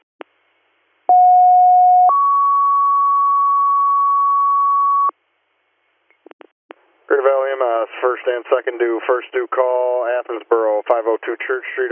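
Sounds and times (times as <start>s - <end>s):
double set of dispatch paging tones: 1.1s - 5.1s
speech: 7.6s - 11.9s.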